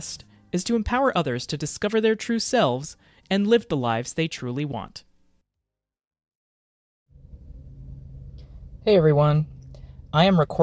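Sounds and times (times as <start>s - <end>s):
speech: 0.0s - 5.1s, 8.8s - 10.6s
traffic rumble heard from inside a car: 7.2s - 10.6s.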